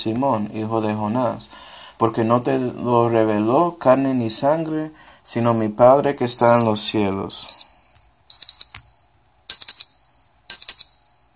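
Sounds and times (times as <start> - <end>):
speech: 0.0 - 7.4
alarm clock ringing: 6.4 - 8.9, 9.5 - 11.3.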